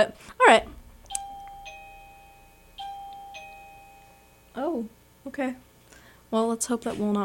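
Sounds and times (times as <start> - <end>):
speech: 0.0 - 0.8, 4.6 - 5.7, 6.3 - 7.2
small door chime ringing: 0.6 - 4.9.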